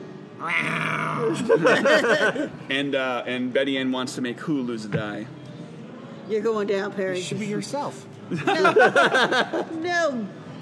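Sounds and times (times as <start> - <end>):
person imitating a yelling demon cat with yowls and snarls: 0.4 - 1.6
speech: 0.4 - 5.4, 6.3 - 10.4
laughter: 1.2 - 2.6, 8.3 - 9.9.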